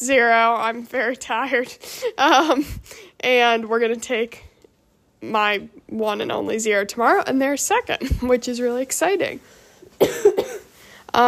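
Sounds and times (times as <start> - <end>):
speech: 0.0 - 4.5, 5.2 - 10.4
dry raspy coughing: 10.0 - 10.7.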